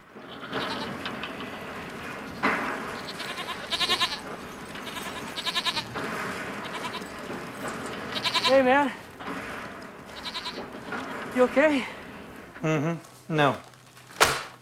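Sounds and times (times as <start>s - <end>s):
steady rustle: 0.0s - 14.6s
disturbed grazing goats bleating: 0.3s - 1.0s, 3.0s - 6.0s, 6.6s - 7.1s, 8.1s - 8.6s, 10.1s - 10.7s
speech: 8.5s - 9.0s, 11.4s - 11.9s, 12.6s - 13.7s.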